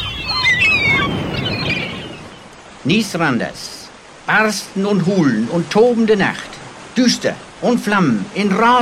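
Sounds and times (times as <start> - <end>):
seagulls crying: 0.0 - 2.6
steady rushing of wind or surf: 0.0 - 8.8
speech: 2.8 - 8.8.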